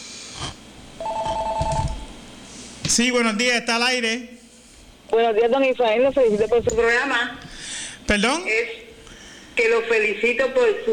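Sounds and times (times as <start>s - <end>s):
telephone ringing as a call comes in: 1.0s - 2.1s
speech: 2.9s - 4.4s, 5.1s - 7.4s, 8.1s - 8.8s, 9.6s - 10.9s.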